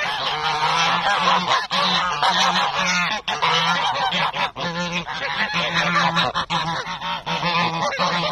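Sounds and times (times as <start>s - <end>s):
flock of fifty geese running up honking at a park: 0.0s - 8.3s.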